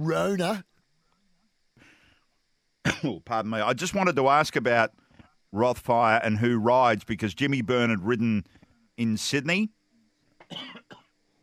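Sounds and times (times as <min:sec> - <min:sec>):
speech: 0:00.0 - 0:00.7, 0:02.8 - 0:09.8, 0:10.5 - 0:11.0
person coughing off the microphone: 0:02.9 - 0:03.2, 0:10.4 - 0:11.0.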